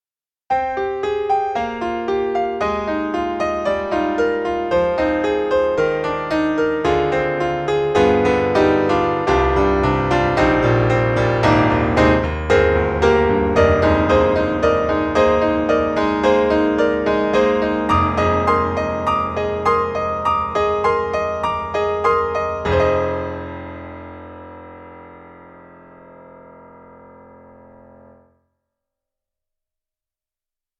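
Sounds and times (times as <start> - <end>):
Bosendorfer 290 piano playing gospel and blues: 0.6 - 24.6.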